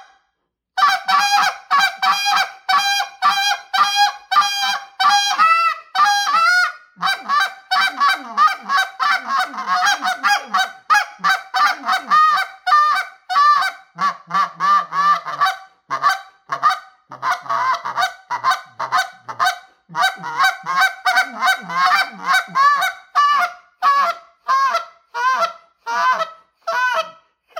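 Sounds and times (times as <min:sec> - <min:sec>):
medium goose call blown while hunting geese: 0:00.8 - 0:27.1.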